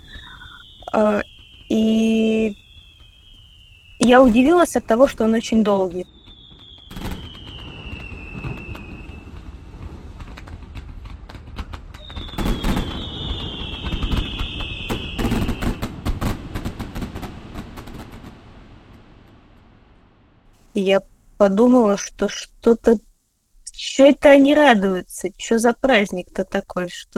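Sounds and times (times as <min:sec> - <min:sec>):
long whistling firework shells: 0:00.0 - 0:10.4, 0:11.8 - 0:18.2
fireworks popping and crackling for Defender of the Fatherland Day: 0:00.0 - 0:20.0
speech: 0:00.9 - 0:02.6, 0:04.0 - 0:06.2, 0:20.9 - 0:23.1, 0:23.8 - 0:27.1.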